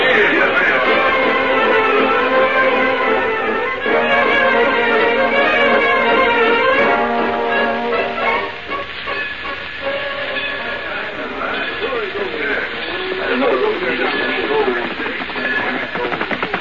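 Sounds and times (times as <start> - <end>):
voices: 0.0 - 4.8, 9.2 - 16.5
steam train hissing and chugging: 0.0 - 16.5.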